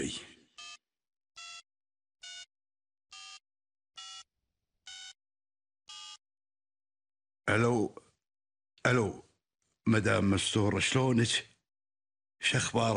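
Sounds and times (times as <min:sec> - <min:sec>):
telephone dialling beeps: 0:00.6 - 0:00.8, 0:04.0 - 0:04.3, 0:04.9 - 0:05.2, 0:05.9 - 0:06.2
speech: 0:07.5 - 0:08.0, 0:08.8 - 0:11.5, 0:12.4 - 0:12.9.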